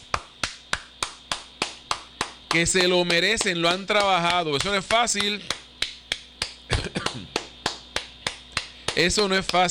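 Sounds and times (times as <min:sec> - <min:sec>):
single person clapping: 0:00.0 - 0:09.6
speech: 0:02.5 - 0:05.6, 0:09.0 - 0:09.6.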